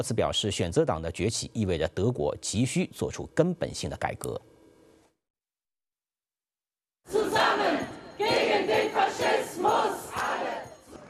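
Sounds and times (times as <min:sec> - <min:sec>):
speech: 0:00.0 - 0:04.5
crowd of protesters chanting anti-fascist slogans at the Brandenburg Gate in Berlin: 0:07.1 - 0:10.8.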